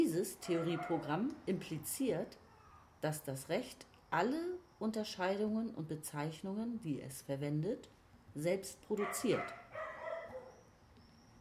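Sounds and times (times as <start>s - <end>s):
speech: 0.0s - 2.4s, 3.0s - 9.7s
dog giving a drawn-out yelping bark: 0.4s - 1.1s, 9.0s - 10.7s.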